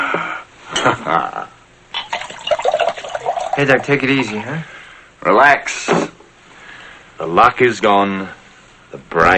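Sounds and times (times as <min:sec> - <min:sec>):
speech: 0:00.8 - 0:01.4, 0:03.6 - 0:06.1, 0:07.2 - 0:09.3
liquor being poured into a glass: 0:02.0 - 0:04.2.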